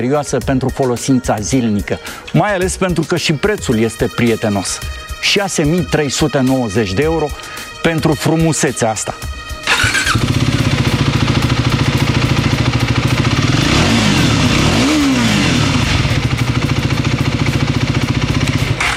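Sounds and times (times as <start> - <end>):
speech: 0.0 - 9.4
motorcycle engine starting, idling and revving: 9.6 - 18.9.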